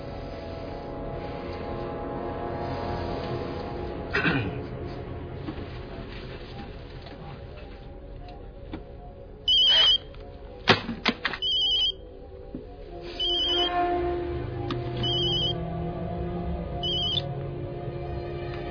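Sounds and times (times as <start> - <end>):
low steady hum: 0.0 - 18.6
telephone ringing in short electronic trills: 9.5 - 10.0, 11.4 - 12.0, 13.2 - 13.7, 15.0 - 15.6, 16.8 - 17.3.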